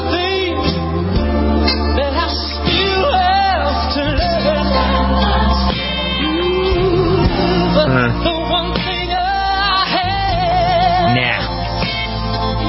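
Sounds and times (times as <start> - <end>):
full instrumental backing: 0.0 - 12.6
solo singer belting a slow emotional song on TV talent show: 7.7 - 8.5, 9.8 - 11.5.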